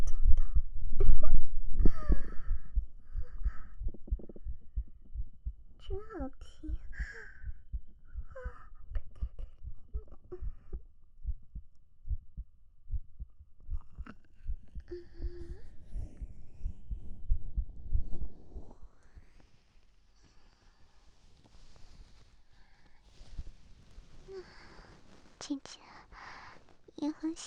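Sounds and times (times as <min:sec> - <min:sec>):
breathy whisper-like sounds: 0:00.0 - 0:04.9, 0:05.8 - 0:10.9, 0:13.7 - 0:17.3, 0:18.0 - 0:27.4
heartbeat thumping: 0:00.0 - 0:18.7
speech: 0:25.5 - 0:25.9, 0:27.0 - 0:27.4.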